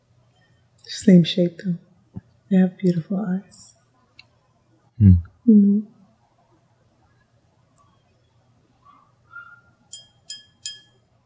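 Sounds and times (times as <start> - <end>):
quiet low hum: 0.0 - 11.2
speech: 0.9 - 1.9, 2.5 - 3.7, 5.0 - 6.0
drinking glass clinking: 9.9 - 11.0.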